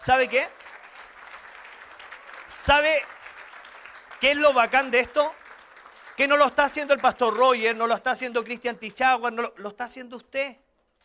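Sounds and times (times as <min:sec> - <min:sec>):
speech: 0:00.0 - 0:00.6, 0:02.6 - 0:03.1, 0:04.2 - 0:05.4, 0:06.2 - 0:10.6
audience applause: 0:00.0 - 0:07.9.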